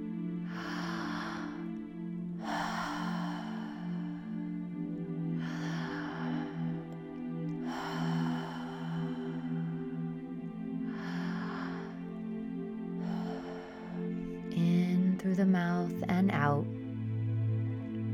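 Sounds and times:
low sustained musical drone: 0.0 - 18.1
gentle breathing through an open mouth during a relaxation exercise: 0.4 - 1.8, 2.4 - 4.6, 5.4 - 10.0, 10.8 - 12.1.

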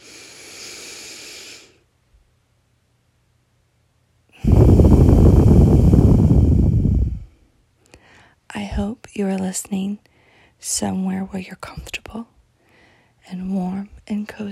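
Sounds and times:
person breathing deeply in and out: 0.0 - 1.8, 4.4 - 8.4, 12.6 - 13.2
speech: 9.2 - 12.3, 13.2 - 14.5.

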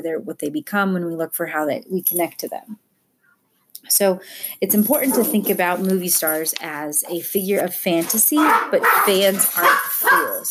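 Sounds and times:
speech: 0.0 - 2.8, 3.8 - 10.4
dog barking: 8.4 - 10.4.

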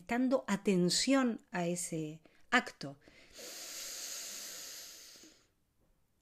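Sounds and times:
speech: 0.1 - 3.6
slow steady inhale through the nose: 3.0 - 5.6.

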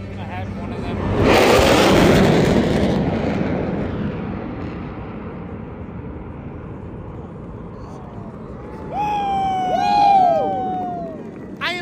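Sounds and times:
four military jets flying overhead: 0.0 - 11.8
crowd cheering and whooping: 7.7 - 11.8.

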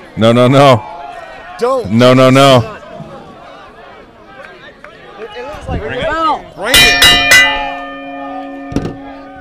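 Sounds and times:
speech: 0.2 - 0.9, 1.6 - 2.8, 5.6 - 7.7
ring bell at a wrestling event struck from the commentary table: 6.7 - 9.3.

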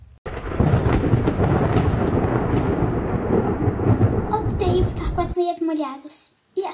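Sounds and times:
deep rumbling thunder: 0.2 - 5.4
heavy steady rain in a thunderstorm: 0.3 - 5.7
person speaking: 4.3 - 6.7.

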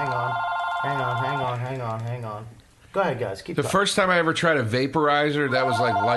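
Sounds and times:
telephone ringing with an electronic warble: 0.0 - 1.9, 5.5 - 6.1
speech: 0.0 - 6.1.

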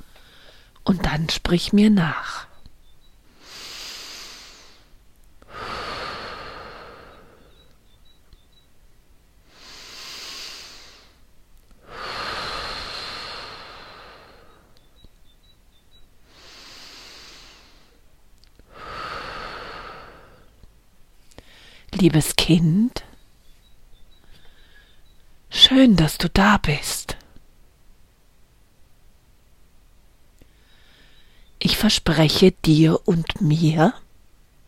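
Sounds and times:
slow deep breathing in and out: 0.0 - 0.8, 3.2 - 8.0, 9.4 - 11.2, 11.8 - 20.6, 21.2 - 21.9, 24.1 - 25.2, 30.4 - 31.6
speech: 0.9 - 2.5, 22.0 - 23.0, 25.8 - 27.0, 31.7 - 34.0.

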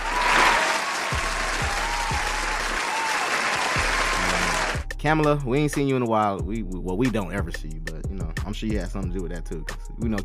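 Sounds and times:
crowd applause: 0.0 - 4.8
speech: 5.0 - 10.2.

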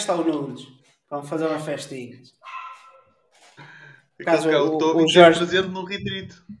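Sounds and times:
speech: 0.0 - 2.4, 3.6 - 6.5
dog barking: 2.4 - 3.3.

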